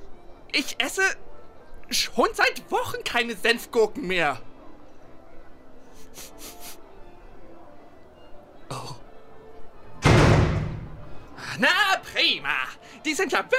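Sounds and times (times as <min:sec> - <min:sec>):
speech: 0:00.6 - 0:01.2, 0:01.9 - 0:04.5, 0:06.1 - 0:06.5, 0:11.6 - 0:13.5
door slamming shut with a booming bang: 0:10.0 - 0:11.1.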